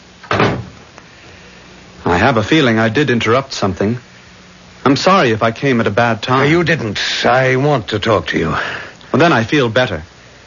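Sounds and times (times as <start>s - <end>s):
door swinging shut with a solid thud: 0.2s - 0.8s
speech: 2.2s - 4.1s, 4.8s - 10.1s.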